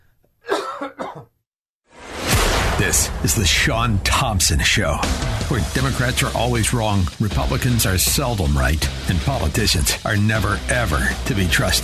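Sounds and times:
harsh rough coughs: 0.4s - 1.3s
speech: 2.8s - 11.8s.

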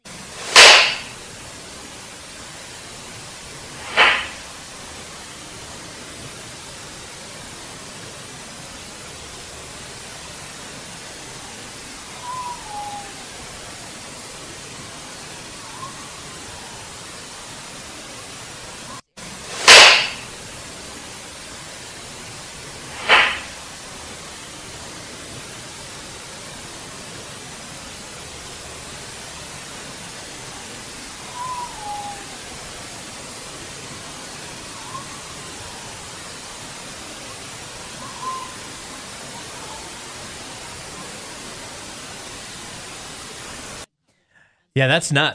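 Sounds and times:
steady hiss of noise: 0.0s - 43.9s
sharp loud bangs: 0.4s - 1.1s, 3.8s - 4.4s, 19.5s - 20.3s, 22.9s - 23.6s
faint brief whistle-like tone: 12.2s - 13.4s, 31.3s - 32.5s, 38.0s - 38.7s
speech: 44.8s - 45.3s.

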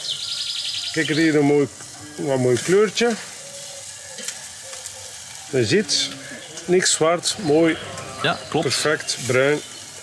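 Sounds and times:
vegetables frying in a hot wok on a barbecue: 0.0s - 10.0s
speech: 1.0s - 3.3s, 5.5s - 9.7s.

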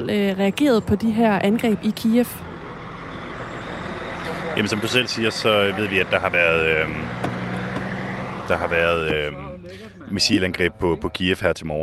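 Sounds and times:
speech: 0.0s - 2.5s, 4.6s - 7.3s, 8.5s - 11.8s
road noise inside a moving vehicle: 0.0s - 11.8s
low engine drone: 0.8s - 10.1s.

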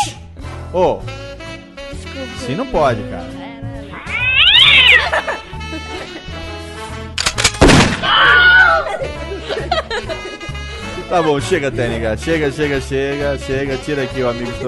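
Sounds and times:
speech: 0.1s - 1.2s, 1.9s - 3.4s, 4.9s - 7.0s, 8.0s - 10.5s, 11.1s - 14.6s
cat yowling in long wavering caterwauls: 3.9s - 5.3s, 8.0s - 9.0s
laughter: 4.7s - 7.0s, 8.2s - 12.9s, 14.1s - 14.6s.

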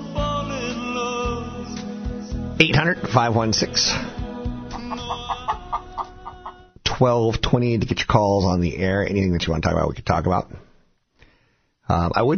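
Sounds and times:
steady musical backing: 0.0s - 6.7s
speech: 2.6s - 4.1s, 7.0s - 10.6s, 11.9s - 12.3s
crooner's voice imitating a rooster crowing: 4.7s - 6.7s.

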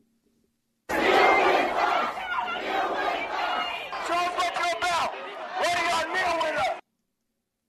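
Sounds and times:
large crowd of protesters chanting in unison in Salt Lake City: 0.9s - 6.8s.

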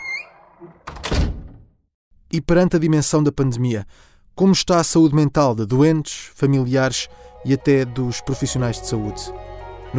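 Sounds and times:
door creaking on its hinges: 0.0s - 1.8s
speech: 0.6s - 0.8s, 2.3s - 9.9s.

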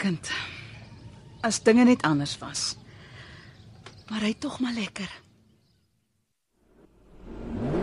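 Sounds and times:
speech: 0.0s - 0.5s, 1.4s - 2.8s, 4.1s - 5.2s
stationary car engine revving: 6.7s - 7.8s.

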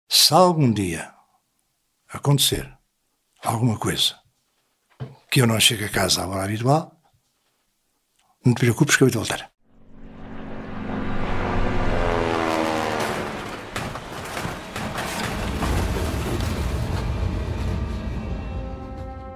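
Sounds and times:
speech: 0.1s - 1.2s, 2.1s - 2.8s, 3.4s - 4.2s, 5.0s - 7.0s, 8.4s - 9.5s
military airplane engine roaring: 9.8s - 19.3s.

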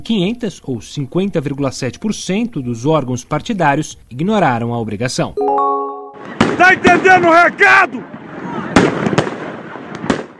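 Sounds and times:
speech: 0.0s - 5.6s, 6.6s - 8.2s
fireworks fired by protesters toward the Supreme Federal Court in Brasília: 6.2s - 7.4s, 8.1s - 10.3s.

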